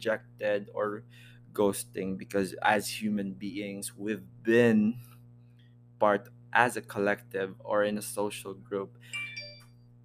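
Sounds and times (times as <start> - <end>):
speech: 0.0 - 5.1, 6.0 - 9.2
steady low hum: 0.0 - 10.0
mobile phone ringtone: 9.1 - 9.8.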